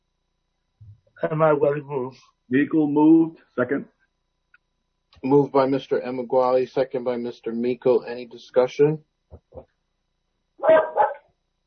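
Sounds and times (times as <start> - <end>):
speech: 1.2 - 4.0, 5.2 - 9.7
dog barking loudly during a board meeting vote: 10.6 - 11.3.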